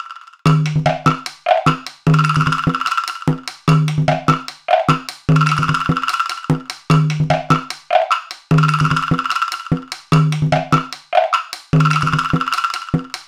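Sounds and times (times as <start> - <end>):
log drum: 0.5 - 13.2.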